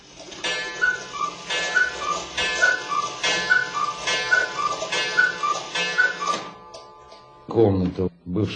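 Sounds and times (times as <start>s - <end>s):
cuckoo clock calling: 0.3s - 6.9s
speech: 7.6s - 8.5s.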